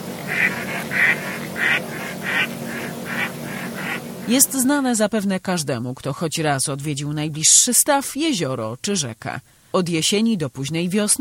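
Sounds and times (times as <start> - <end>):
mallard duck quacking: 0.0 - 4.5
steady hum: 0.0 - 11.1
speech: 4.3 - 11.1.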